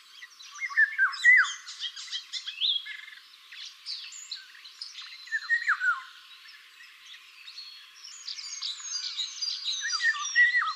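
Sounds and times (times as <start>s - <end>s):
other birds chirping and trilling: 0.0s - 10.7s
golden oriole fluty whistling song: 0.5s - 3.0s, 5.0s - 6.2s, 8.1s - 10.7s.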